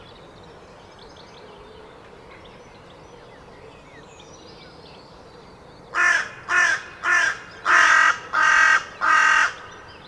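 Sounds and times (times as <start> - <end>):
Carrion crow Corvus corone giving loud harsh caws: 6.0 - 9.9.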